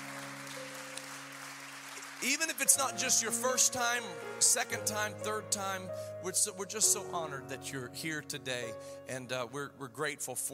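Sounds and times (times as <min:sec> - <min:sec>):
large audience clapping: 0:00.0 - 0:03.3
speech: 0:02.2 - 0:10.5.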